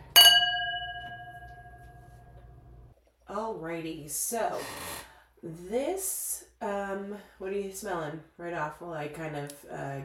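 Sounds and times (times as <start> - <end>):
wine glasses clinking in a toast: 0.0 - 2.1
wine glass pure ringing tone: 0.0 - 2.4
speech: 3.4 - 10.0.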